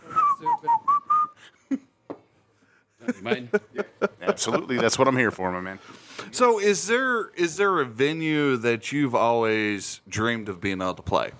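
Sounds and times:
person whistling a five-note phrase: 0.0 - 1.5
laughter: 3.0 - 5.0
speech: 3.2 - 3.8, 4.4 - 11.3.

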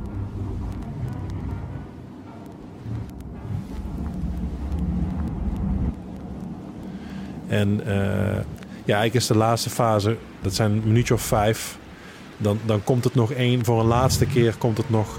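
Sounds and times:
faint clicks: 0.0 - 7.5, 8.3 - 9.5
steady dense rumble of broadband noise: 0.0 - 15.1
speech: 7.5 - 11.8, 12.4 - 15.1.

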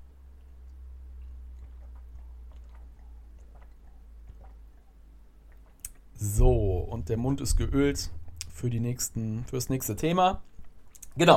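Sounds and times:
steady low hum: 0.0 - 10.8
person sipping water with wet mouth clicks and gulp: 0.5 - 6.1
speech: 6.2 - 10.5, 11.2 - 11.3.

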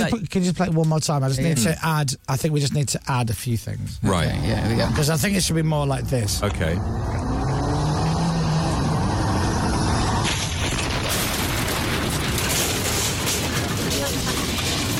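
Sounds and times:
speech: 0.0 - 7.4
car engine humming: 4.5 - 14.9
loud car crash: 8.6 - 14.9
metal parts breaking loose and clattering: 10.3 - 14.9.

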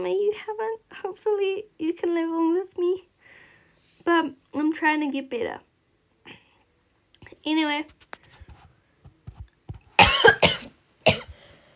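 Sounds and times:
speech: 0.0 - 3.1, 4.0 - 5.7, 7.4 - 8.1
person coughing harshly: 10.0 - 11.4
soft breathy sounds and exhale: 11.3 - 11.7.

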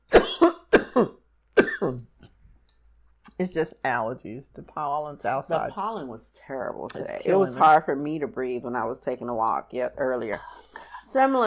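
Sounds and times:
harsh coughing: 0.1 - 2.1
speech: 1.0 - 1.2, 1.8 - 2.1, 3.4 - 11.4.

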